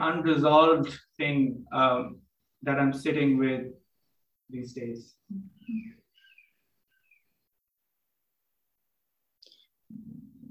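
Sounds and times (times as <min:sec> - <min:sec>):
speech: 0:00.0 - 0:03.8, 0:04.5 - 0:06.0
faint bird chirps: 0:05.6 - 0:07.5.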